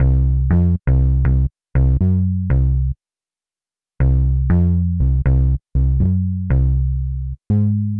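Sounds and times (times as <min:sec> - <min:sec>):
distorted bass: 0:00.0 - 0:03.0, 0:04.0 - 0:07.9.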